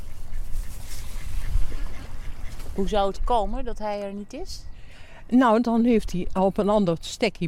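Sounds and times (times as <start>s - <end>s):
ducks quacking outdoors: 0.0s - 3.1s
steady low rumble of wind: 0.0s - 7.4s
speech: 2.8s - 4.7s, 5.3s - 7.4s.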